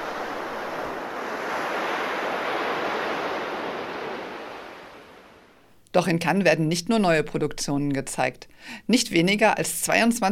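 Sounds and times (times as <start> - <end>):
ocean surf washing onto the beach at Cannes: 0.0 - 5.6
speech: 6.0 - 10.2.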